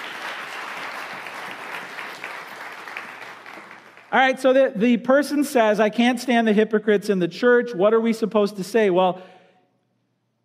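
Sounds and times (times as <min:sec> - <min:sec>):
crowd applauding: 0:00.0 - 0:04.2
speech: 0:04.1 - 0:09.3.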